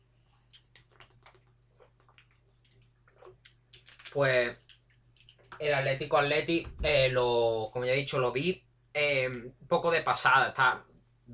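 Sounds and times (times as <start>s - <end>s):
person drinking water with sips and swallows: 0.4s - 5.5s
speech: 4.2s - 4.6s, 5.6s - 11.3s.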